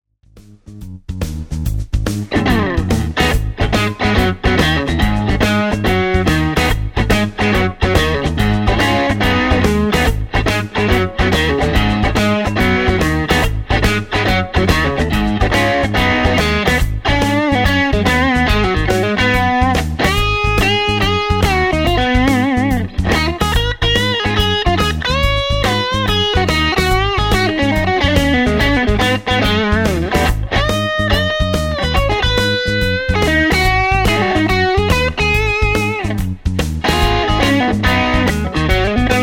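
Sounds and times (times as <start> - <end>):
crunchy electric guitar through mid pickups: 0.6 - 39.2.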